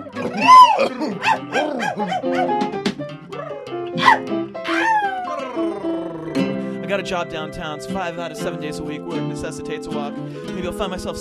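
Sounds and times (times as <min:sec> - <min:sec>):
several dogs barking and yipping: 0:00.0 - 0:02.7, 0:03.3 - 0:05.6
speech: 0:00.2 - 0:02.5, 0:06.9 - 0:11.1.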